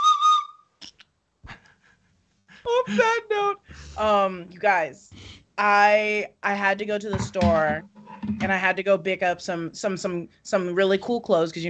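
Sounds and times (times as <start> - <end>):
shrill whistle blasts: 0.0 - 0.6
speech: 2.8 - 11.6.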